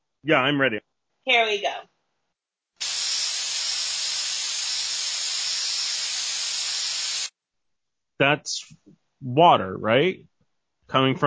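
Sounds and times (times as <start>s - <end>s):
speech: 0.2s - 1.9s, 8.2s - 10.3s, 10.9s - 11.2s
aerosol spray can hissing: 2.8s - 7.3s.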